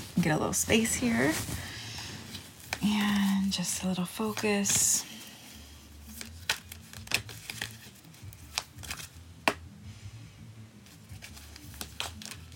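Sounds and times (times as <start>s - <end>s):
deck of cards shuffling: 0.0s - 9.6s, 10.8s - 12.5s
speech: 0.2s - 1.7s, 2.8s - 5.1s.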